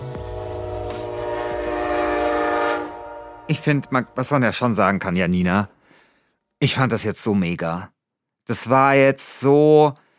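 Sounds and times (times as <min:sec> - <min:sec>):
approaching train horn blaring: 0:00.0 - 0:04.9
speech: 0:03.5 - 0:05.8, 0:06.6 - 0:10.0.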